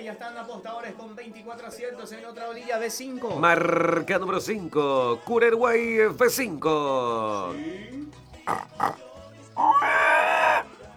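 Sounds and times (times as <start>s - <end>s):
speech: 0.0s - 10.1s
pig grunting and squealing: 8.4s - 10.7s.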